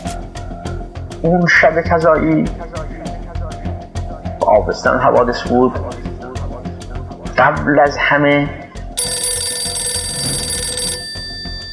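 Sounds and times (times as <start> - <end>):
speech: 1.2 - 2.8, 4.5 - 6.0, 7.4 - 8.6
telephone ringing in Tehran: 9.0 - 11.7.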